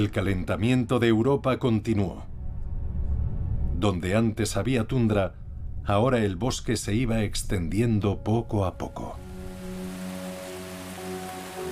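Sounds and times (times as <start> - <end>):
speech: 0.0 - 2.3, 3.8 - 9.2
low sustained musical tones: 0.6 - 11.7
steady rain: 9.2 - 11.7.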